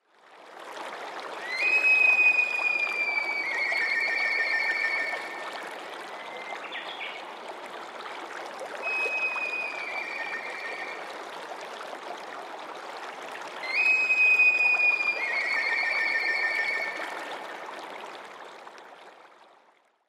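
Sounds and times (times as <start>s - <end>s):
fue flute: 1.4s - 6.7s, 8.8s - 11.1s, 13.6s - 17.4s.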